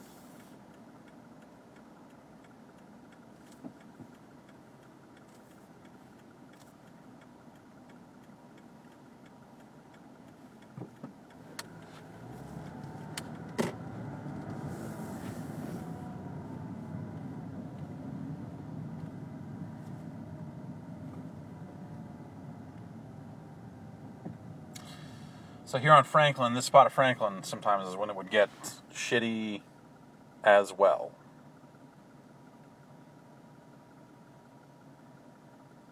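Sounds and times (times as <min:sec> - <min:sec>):
car engine idling on Franklin: 0:00.0 - 0:35.8
speech: 0:25.7 - 0:29.7, 0:30.4 - 0:31.2.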